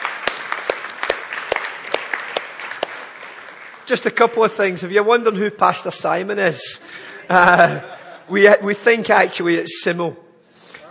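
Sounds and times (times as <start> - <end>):
audience applause: 0.0 - 4.7
speech: 3.9 - 10.2
laughter: 6.8 - 8.6.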